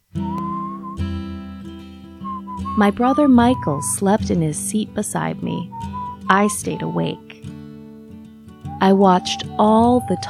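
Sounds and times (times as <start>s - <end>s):
father whistling a short thin tune in a car at night: 0.1s - 3.8s, 5.7s - 7.3s, 8.7s - 10.2s
speech: 2.8s - 7.2s, 8.8s - 10.2s.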